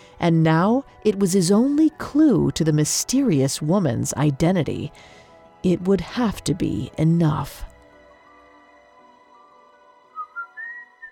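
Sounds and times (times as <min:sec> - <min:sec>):
speech: 0:00.2 - 0:07.7
woman whistling a melody: 0:10.1 - 0:11.1.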